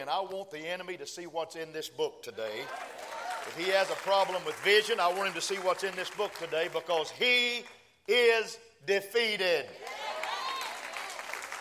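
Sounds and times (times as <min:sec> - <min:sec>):
speech: 0:00.0 - 0:10.0
people shouting and cheering: 0:02.5 - 0:03.9, 0:09.7 - 0:11.2
audience clapping: 0:02.6 - 0:08.2, 0:09.7 - 0:11.5.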